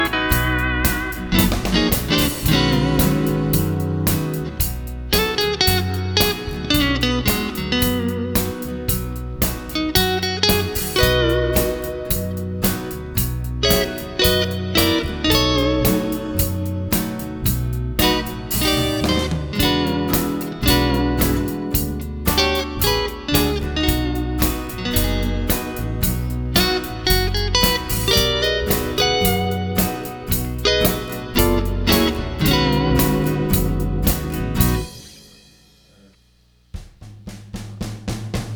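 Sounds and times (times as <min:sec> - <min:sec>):
lead guitar on a Telecaster with Bigsby: 0:00.0 - 0:35.2
backing music: 0:00.0 - 0:35.9.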